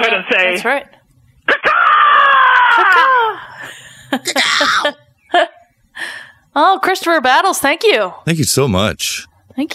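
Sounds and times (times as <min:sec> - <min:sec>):
speech: 0:00.1 - 0:01.7, 0:04.1 - 0:05.5, 0:06.6 - 0:09.7
person imitating a screaming hog with squeals and grunts: 0:01.5 - 0:03.4, 0:04.2 - 0:05.0.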